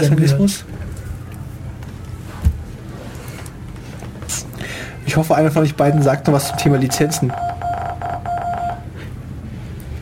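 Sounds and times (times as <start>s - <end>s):
speech: 0.0s - 0.8s, 5.1s - 7.5s
pulsing Morse-code-like electronic beeps in a jingle: 5.8s - 8.8s.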